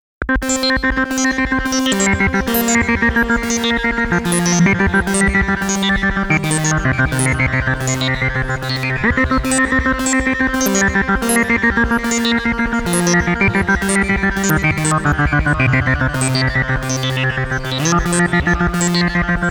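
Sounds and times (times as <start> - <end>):
MOOG MAVIS synthesizer bubble sounds with RE 301 tape echo: 0.2 - 19.4.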